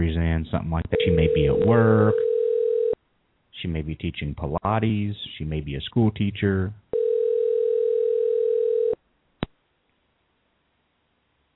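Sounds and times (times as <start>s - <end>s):
speech: 0.1s - 2.3s, 3.6s - 6.8s
unanswered telephone call ringback tone: 1.0s - 3.0s, 7.0s - 9.0s.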